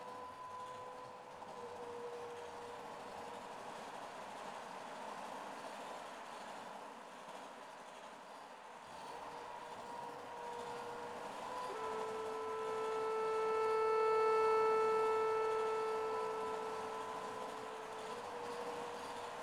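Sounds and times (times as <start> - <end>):
MIDI saxophone: 9.9 - 19.4.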